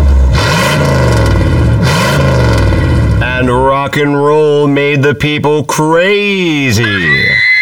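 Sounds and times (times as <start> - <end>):
loud eight-cylinder car engine idling and revving: 0.0 - 3.5
speech: 3.9 - 7.5.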